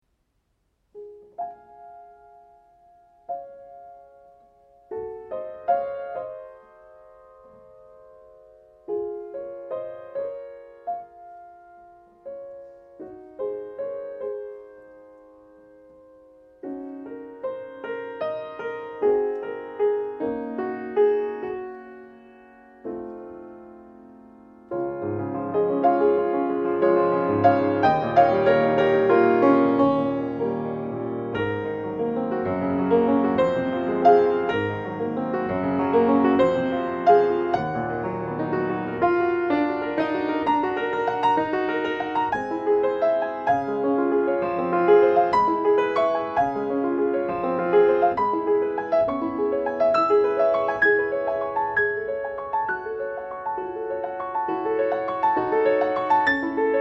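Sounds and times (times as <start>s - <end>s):
piano torch song: 0.9s - 56.7s.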